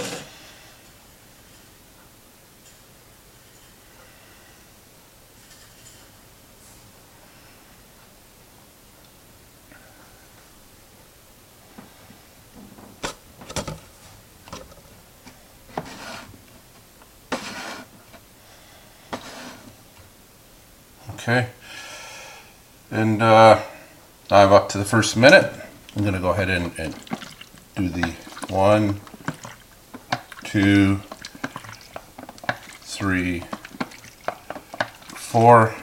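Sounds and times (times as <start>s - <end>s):
lidded container set down on a bench: 12.6s - 14.9s, 25.9s - 35.7s
speech: 21.2s - 21.6s, 23.0s - 23.7s, 24.3s - 27.2s, 27.8s - 29.1s, 30.5s - 31.1s, 33.0s - 33.5s, 35.4s - 35.8s
lidded container tapped against a bench to knock bubbles off: 26.7s - 35.3s.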